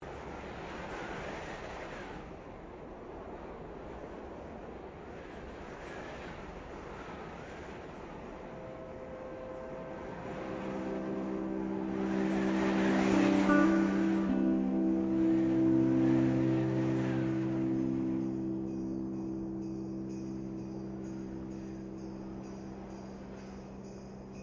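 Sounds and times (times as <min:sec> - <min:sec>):
Christmas ambient music: 0:08.5 - 0:24.4.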